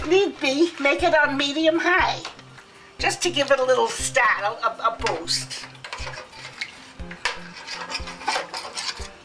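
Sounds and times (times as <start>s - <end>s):
speech: 0.1s - 2.4s, 3.0s - 6.2s
spoon scraping and clinking against a pot while stirring a flour and bouillon cube sauce: 5.1s - 9.2s.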